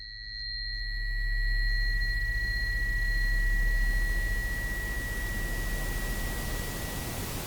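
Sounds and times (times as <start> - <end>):
low hum: 0.4 - 7.2
thin high sustained tones: 0.4 - 7.3
steady even hiss of broadband noise: 3.9 - 7.4.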